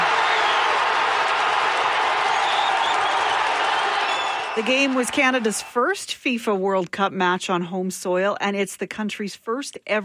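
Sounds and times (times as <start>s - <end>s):
large crowd of soccer fans roaring and cheering after a goal: 0.0s - 6.0s
speech: 4.6s - 10.0s.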